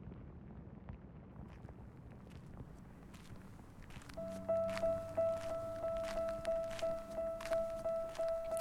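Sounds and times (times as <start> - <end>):
soft footsteps walking at the edge of a city: 1.5 - 8.6
constant thin tone: 2.0 - 8.6.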